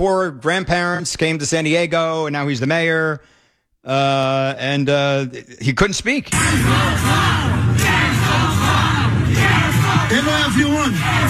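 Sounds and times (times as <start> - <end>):
speech: 0.0 - 7.6, 9.5 - 11.2
agitated crowd shouting and yelling: 6.3 - 11.2.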